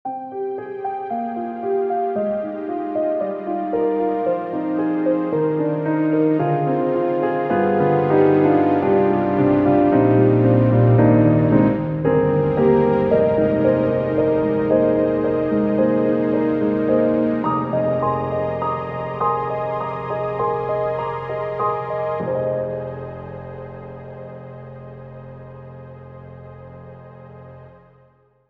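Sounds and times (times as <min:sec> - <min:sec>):
analog string synthesizer: 0:01.4 - 0:28.0.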